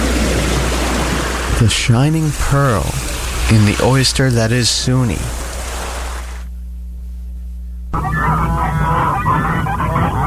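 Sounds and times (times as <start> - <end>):
low hum: 0.0 - 10.2
speech: 1.6 - 5.4
flock of geese and ducks honking: 8.0 - 10.2.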